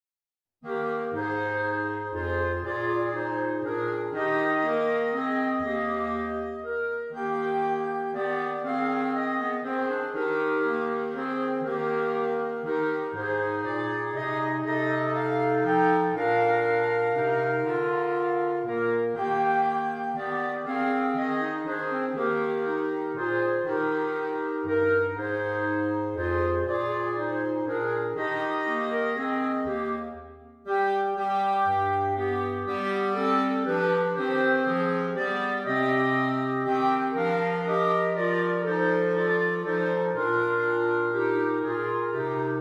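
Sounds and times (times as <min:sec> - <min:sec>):
clarinet playing a Christmas carol: 0:00.6 - 0:42.6.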